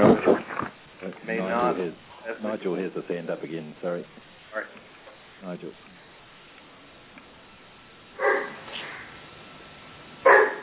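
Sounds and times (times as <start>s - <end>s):
speech: 1.8s - 6.0s
dog barking: 8.2s - 9.0s, 10.2s - 10.6s.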